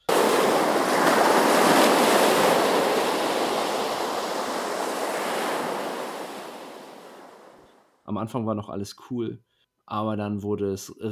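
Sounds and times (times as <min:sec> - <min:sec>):
gusting wind: 0:00.0 - 0:07.8
stormy sea waves crashing and surging: 0:00.0 - 0:07.8
speech: 0:08.2 - 0:11.0.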